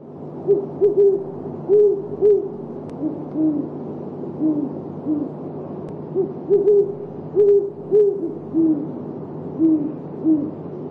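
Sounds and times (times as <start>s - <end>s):
great horned owl hooting: 0.4s - 5.4s, 6.1s - 10.6s.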